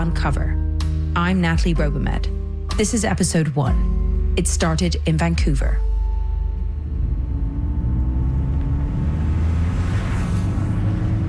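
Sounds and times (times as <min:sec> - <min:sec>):
speech: 0:00.0 - 0:00.6, 0:01.2 - 0:05.9
car driving on a freeway between Los Angeles and Long Beach, California: 0:06.4 - 0:11.2.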